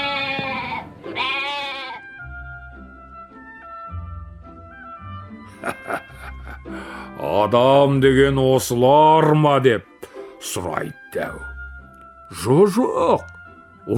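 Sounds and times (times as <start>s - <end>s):
goats bleating in a meadow: 0.0s - 2.1s
soft gentle musical passage: 0.0s - 13.9s
laughter: 5.5s - 7.2s
speech: 7.4s - 11.5s, 12.3s - 13.3s.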